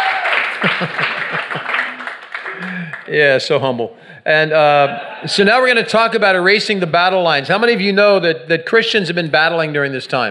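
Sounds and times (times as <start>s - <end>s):
sharp individual claps: 0.0s - 3.2s
audience applause: 0.0s - 3.5s
laughter: 0.4s - 3.3s, 4.5s - 5.9s
speech: 0.6s - 1.8s, 2.6s - 10.2s.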